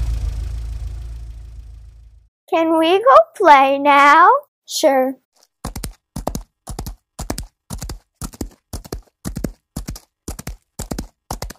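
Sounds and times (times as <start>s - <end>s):
speech: 2.5s - 5.2s
horse hooves clip-clopping: 5.4s - 11.5s.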